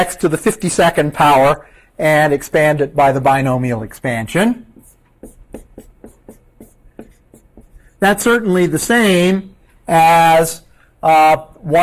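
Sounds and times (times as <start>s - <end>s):
speech: 0.0s - 4.7s, 8.0s - 11.8s
scratchy strokes writing an equation on a board: 4.7s - 8.4s.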